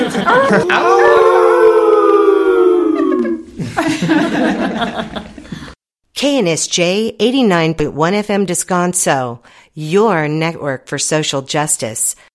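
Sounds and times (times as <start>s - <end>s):
group of people howling imitating coyotes: 0.0s - 3.6s
people chuckling and laughing: 0.0s - 5.7s
speech: 0.5s - 1.0s, 6.2s - 12.3s.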